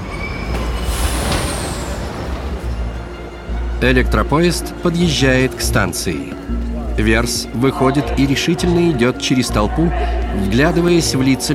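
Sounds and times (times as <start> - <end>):
car brakes screeching while swerving into a bus during a chase: 0.0 - 2.7
car crashing into a bus: 0.4 - 2.8
speech: 3.8 - 11.5.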